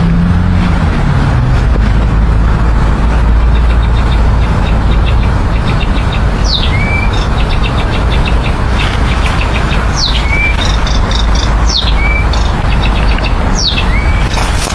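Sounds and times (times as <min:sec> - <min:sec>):
constant low roar of traffic: 0:00.0 - 0:14.7
nightingale singing by a bridge: 0:03.3 - 0:14.7.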